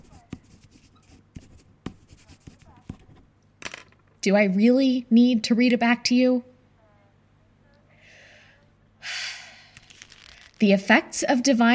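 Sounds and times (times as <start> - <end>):
pen scratching on paper: 0.0 - 3.2
speech: 4.2 - 6.5, 10.6 - 11.7.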